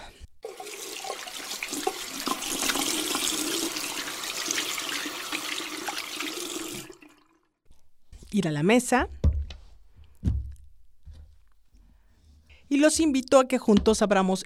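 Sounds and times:
hands washed under a running water tap: 0.4s - 7.4s
speech: 8.4s - 9.2s, 12.8s - 14.4s.

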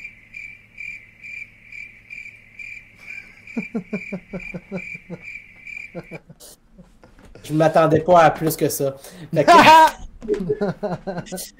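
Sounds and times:
crickets chirping: 0.0s - 6.6s
faint low hum: 0.0s - 11.5s
laughter: 3.0s - 5.2s, 5.9s - 8.1s, 9.3s - 11.5s
speech: 3.6s - 5.4s, 6.0s - 11.5s.

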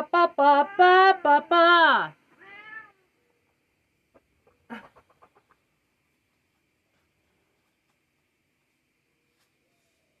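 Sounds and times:
speech: 0.1s - 2.2s
cat meowing: 2.4s - 3.1s.

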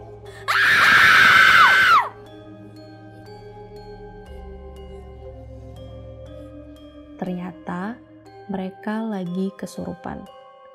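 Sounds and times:
two people in a dance show screaming together: 0.5s - 2.1s
speech: 8.6s - 10.4s.

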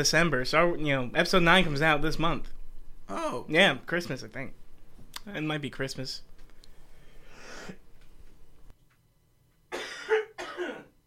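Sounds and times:
speech: 0.0s - 4.6s, 5.2s - 6.3s
person clearing throat: 9.7s - 11.0s
person coughing: 9.7s - 11.0s.

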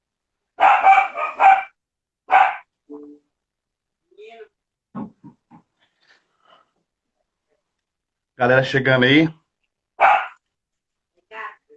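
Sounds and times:
small dog barking: 0.6s - 2.7s, 10.0s - 10.4s
speech: 8.4s - 9.4s.

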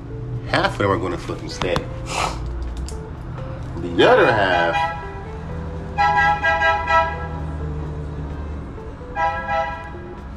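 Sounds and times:
speech: 0.5s - 2.4s, 3.8s - 5.0s
coffee truck horn honking outside: 4.5s - 5.2s, 5.9s - 7.5s, 9.1s - 10.0s.

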